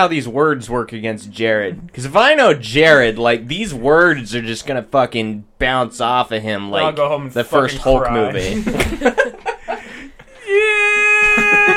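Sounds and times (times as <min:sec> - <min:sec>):
speech: 0:00.0 - 0:09.5
laughter: 0:08.3 - 0:11.7
voice imitating someone sobbing into a pillow: 0:10.3 - 0:11.7.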